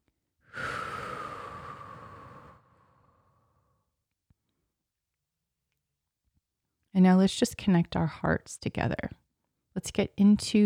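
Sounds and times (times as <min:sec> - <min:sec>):
long deep exhale during a guided grounding meditation: 0:00.4 - 0:03.9
speech: 0:07.0 - 0:09.2, 0:09.8 - 0:10.6.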